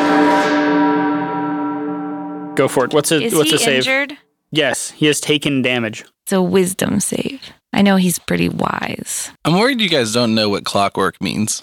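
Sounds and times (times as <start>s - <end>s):
church bell tolling: 0.0s - 3.6s
speech: 2.6s - 11.6s.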